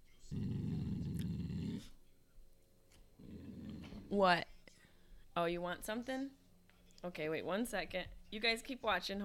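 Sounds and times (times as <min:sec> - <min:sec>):
dog growling: 0:00.3 - 0:02.0, 0:03.2 - 0:04.1
speech: 0:04.1 - 0:04.5, 0:05.4 - 0:06.4, 0:07.0 - 0:09.2.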